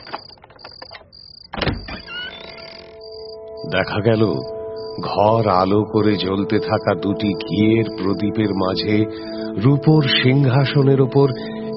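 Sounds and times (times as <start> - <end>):
bunch of keys unlocking a door with a large brass padlock: 0.0 - 2.8
door opening with a drawn-out squeak: 0.0 - 3.4
speech: 3.7 - 11.6.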